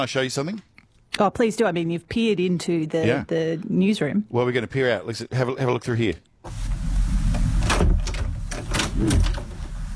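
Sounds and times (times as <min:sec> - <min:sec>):
speech: 0:00.0 - 0:06.6, 0:09.0 - 0:09.4
noisy door being opened with rattling scraping clatters: 0:07.5 - 0:09.7.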